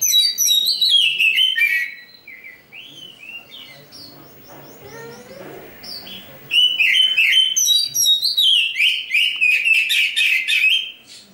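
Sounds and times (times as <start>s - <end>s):
Oriental magpie-robin singing chattering song: 0.0s - 11.3s.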